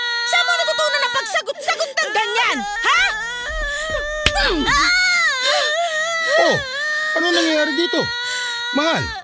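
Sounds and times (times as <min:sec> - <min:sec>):
child crying: 0:00.0 - 0:09.2
speech: 0:07.6 - 0:09.2.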